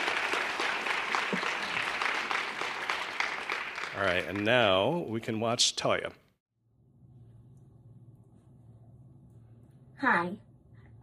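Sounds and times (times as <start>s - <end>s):
audience clapping: 0.0s - 5.7s
speech: 4.0s - 6.2s, 10.0s - 10.5s.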